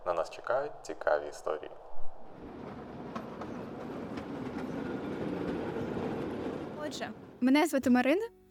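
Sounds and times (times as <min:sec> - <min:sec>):
speech: 0:00.1 - 0:02.5, 0:06.9 - 0:08.4
tram departing and rolling on rails: 0:02.3 - 0:07.8
wheels clicking on track joints: 0:02.5 - 0:07.3.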